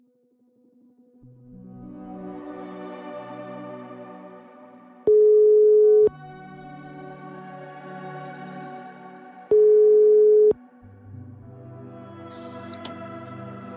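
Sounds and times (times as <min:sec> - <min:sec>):
layered music: 0:00.0 - 0:13.7
telephone ringback beeps during outgoing call to a police inspector: 0:05.1 - 0:06.1, 0:09.5 - 0:10.5.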